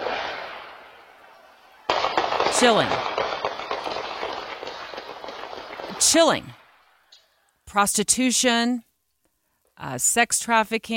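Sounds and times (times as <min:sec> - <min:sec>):
gunshot with hissing echo captured on a doorbell camera: 0:00.0 - 0:01.0, 0:01.8 - 0:06.3
speech: 0:02.6 - 0:03.2, 0:06.0 - 0:06.6, 0:07.7 - 0:08.9, 0:09.8 - 0:10.9.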